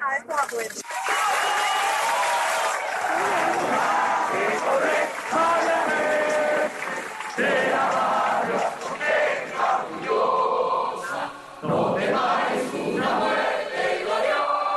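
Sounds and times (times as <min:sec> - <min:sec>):
speech: 0:00.2 - 0:01.2
large protest crowd clapping: 0:00.3 - 0:10.6
large protest crowd shouting: 0:00.9 - 0:14.6.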